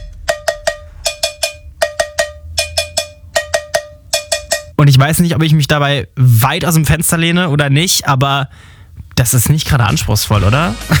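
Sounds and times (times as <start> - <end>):
cowbell played as a percussion instrument in a pop song: 0.0 - 4.8
speech: 4.8 - 10.9.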